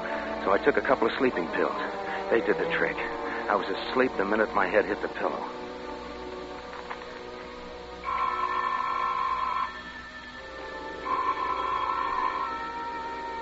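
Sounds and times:
soft hiss: 0.0s - 13.3s
speech: 0.4s - 5.6s
distant telephone ringing with warbling electronic tone: 8.0s - 13.3s.

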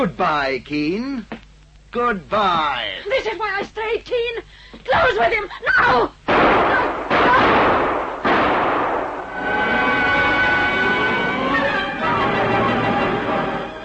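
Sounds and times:
speech: 0.0s - 7.8s
pistol gunshots in an audio drama set in a crumbling warehouse: 6.3s - 9.3s
sustained dense sound: 8.5s - 13.8s.

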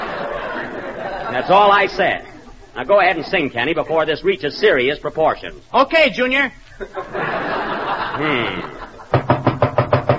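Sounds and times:
people laughing: 0.0s - 4.1s, 6.6s - 9.2s
speech: 1.3s - 8.8s
quick firm knocking on a door: 9.1s - 10.1s.

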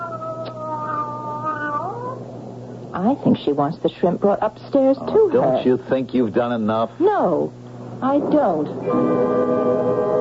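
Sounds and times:
cat meowing with long drawn-out wailing tone: 0.0s - 2.2s
speech: 3.0s - 10.0s.

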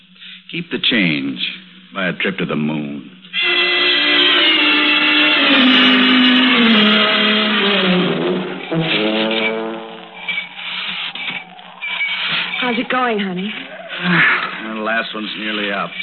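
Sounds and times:
speech: 0.5s - 3.2s, 5.5s - 7.4s, 12.8s - 16.0s
car horn honking: 3.4s - 7.6s, 8.6s - 13.1s.

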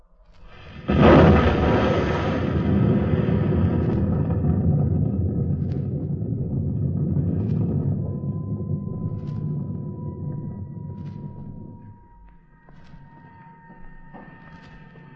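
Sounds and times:
deep explosion: 0.5s - 12.0s.

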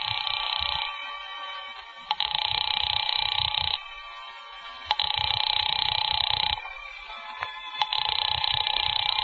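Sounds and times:
house telephone long buzzing rings: 0.0s - 1.4s, 2.1s - 4.2s, 4.8s - 6.7s, 7.7s - 9.2s.

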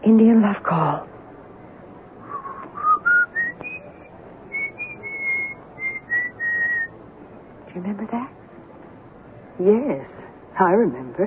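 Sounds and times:
faint hiss: 0.0s - 11.2s
speech: 0.1s - 1.1s, 7.8s - 8.4s, 9.6s - 11.2s
person whistling a slow wavering old tune: 2.3s - 6.9s.

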